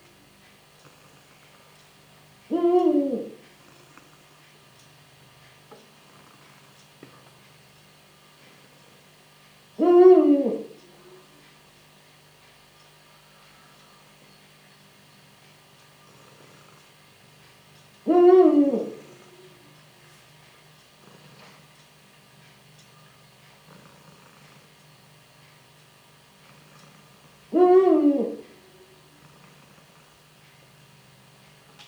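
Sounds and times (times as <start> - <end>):
Eurasian eagle-owl hooting: 2.5 - 3.9, 9.8 - 11.3, 18.0 - 20.1, 27.5 - 29.1.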